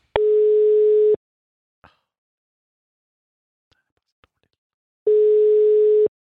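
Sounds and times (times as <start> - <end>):
telephone ringback tone: 0.2 - 1.2, 5.1 - 6.1.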